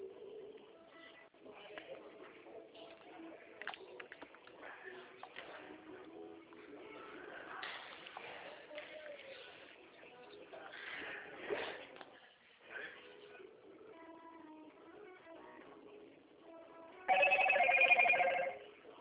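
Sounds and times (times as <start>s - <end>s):
mobile phone SMS notification: 17.1s - 18.6s.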